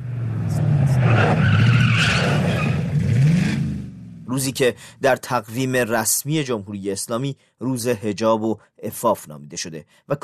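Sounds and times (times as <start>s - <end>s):
racing car tires screeching and skidding: 0.0s - 3.9s
racing car engines roaring: 0.0s - 4.2s
speech: 4.4s - 10.2s.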